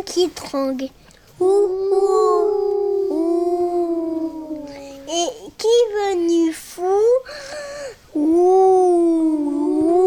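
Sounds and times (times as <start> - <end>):
speech: 0.1 - 2.6, 5.1 - 8.7
person imitating owl hoot: 1.4 - 5.1, 8.2 - 10.0.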